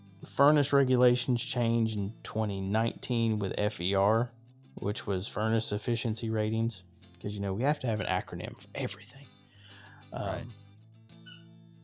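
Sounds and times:
speech: 0:00.2 - 0:09.3, 0:10.1 - 0:10.6
squeaky raccoon toy squeaking as dog chews it: 0:08.0 - 0:08.3, 0:11.2 - 0:11.6.

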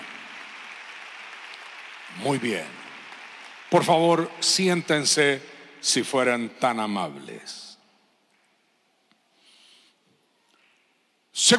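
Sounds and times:
audience applauding: 0:00.0 - 0:05.4
speech: 0:02.1 - 0:02.8, 0:03.7 - 0:07.7, 0:11.4 - 0:11.5.

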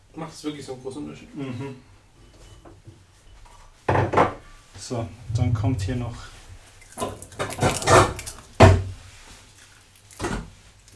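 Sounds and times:
speech: 0:00.2 - 0:01.9, 0:04.8 - 0:06.3
walnut pieces clattering onto carpaccio on a plate: 0:06.8 - 0:10.9.

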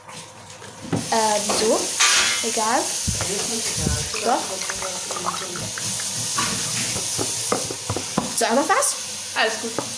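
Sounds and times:
speech: 0:00.8 - 0:06.6, 0:08.4 - 0:09.9
liquid being poured into a glass: 0:03.1 - 0:07.4
splashes: 0:03.8 - 0:06.8.

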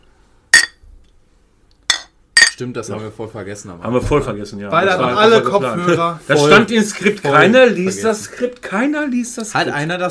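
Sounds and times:
beer glasses knocked together in a toast in a winter garden: 0:00.6 - 0:00.8, 0:01.9 - 0:02.6
speech: 0:02.6 - 0:10.1.

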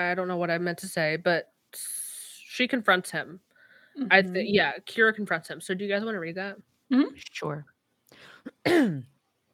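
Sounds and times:
speech: 0:00.0 - 0:09.1
person clearing throat: 0:08.5 - 0:09.1.

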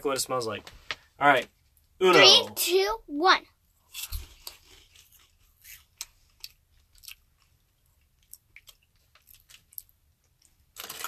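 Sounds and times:
speech: 0:00.0 - 0:04.2
crunching and chewing of a peanut snack from Israel: 0:04.0 - 0:11.0.

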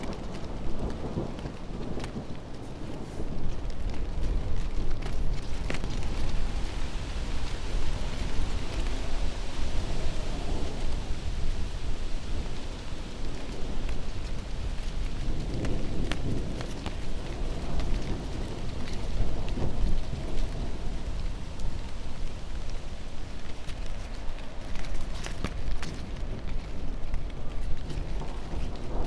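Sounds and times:
deep continuous rumble: 0:00.0 - 0:29.0
heavy autumn rainstorm pouring: 0:00.0 - 0:29.0.

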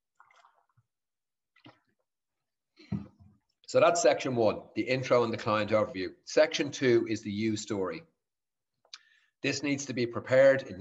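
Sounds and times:
person sipping a drink of water: 0:00.0 - 0:02.1
wet slurping, swallowing and gulping of water: 0:00.0 - 0:02.2
speech: 0:03.7 - 0:08.1, 0:09.4 - 0:10.7.

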